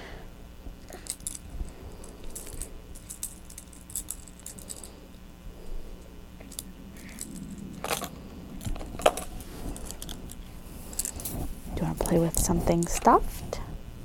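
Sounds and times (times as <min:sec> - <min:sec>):
keys jangling: 0:00.9 - 0:04.9, 0:06.4 - 0:11.4
speech: 0:12.1 - 0:13.6.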